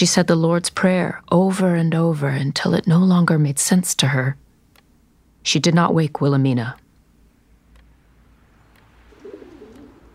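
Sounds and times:
speech: 0.0s - 4.4s, 5.4s - 6.8s
steady hum: 0.0s - 10.1s
pigeons cooing: 9.0s - 10.1s.

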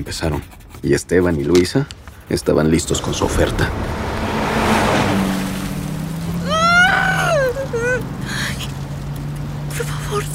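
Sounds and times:
speech: 0.0s - 4.0s
road rumble: 0.0s - 10.3s
car engine humming while driving fast during a hurricane: 1.9s - 10.3s
voice crying out in rising, wavering tones: 6.4s - 8.0s.

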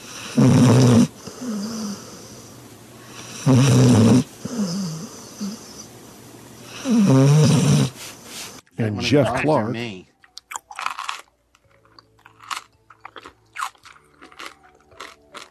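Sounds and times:
dog snoring: 0.0s - 5.9s, 6.6s - 8.0s
speech: 0.4s - 0.8s, 9.1s - 10.0s.

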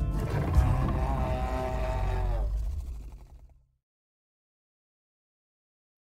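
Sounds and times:
African leopard growling: 0.1s - 3.6s.

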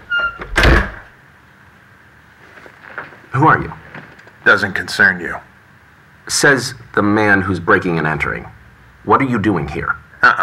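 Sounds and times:
door squeaking as it swings: 0.0s - 1.1s
speech: 3.4s - 3.8s, 4.5s - 5.5s, 6.3s - 10.4s.

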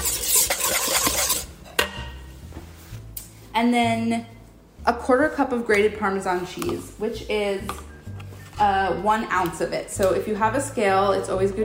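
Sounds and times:
whisking a lemon juice and black pepper dressing in a bowl: 0.0s - 1.5s
speech: 3.6s - 7.9s, 8.6s - 11.6s.

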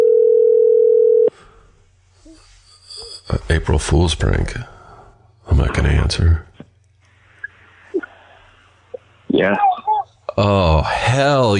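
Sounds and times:
telephone dial tone while a call is placed: 0.0s - 1.3s
speech: 3.3s - 4.7s, 5.6s - 6.5s, 9.4s - 9.7s, 10.4s - 11.5s.

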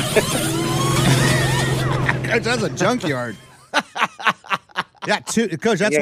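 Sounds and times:
car engine with suspected failing fuel pump droning: 0.0s - 3.9s
laughter: 0.0s - 6.0s
speech: 0.2s - 0.6s, 2.3s - 3.5s, 5.0s - 6.0s.

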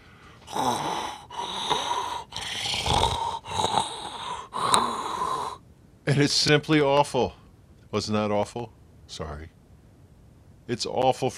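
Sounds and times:
heavy wheezy breathing into a microphone held to the mouth during a call: 0.0s - 5.6s
speech: 0.5s - 0.9s, 6.1s - 9.6s, 10.7s - 11.3s.

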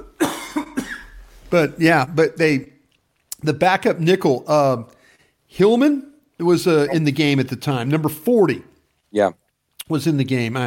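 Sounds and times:
person clearing throat: 0.0s - 1.2s
person coughing: 0.0s - 1.2s
speech: 1.5s - 2.7s, 3.4s - 10.6s.

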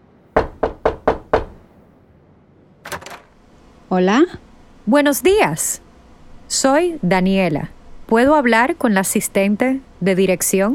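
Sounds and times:
knocking on a door: 0.4s - 1.6s
speech: 3.9s - 5.8s, 6.5s - 10.7s.

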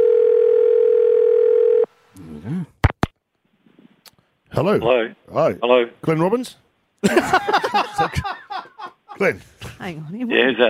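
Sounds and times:
steady loud telephone dial tone: 0.0s - 1.9s
speech: 4.6s - 8.4s, 9.2s - 10.6s
laughter: 7.0s - 9.7s.

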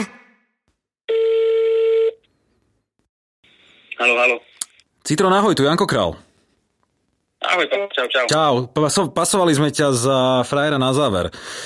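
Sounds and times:
telephone tone as a call is placed: 1.1s - 2.2s
speech: 4.0s - 6.2s, 7.5s - 11.6s.

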